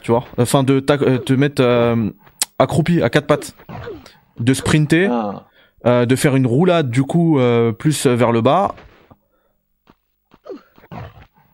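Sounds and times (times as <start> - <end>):
speech: 0.0 - 8.9
video game bear growling and roaring while attacking: 3.7 - 5.5.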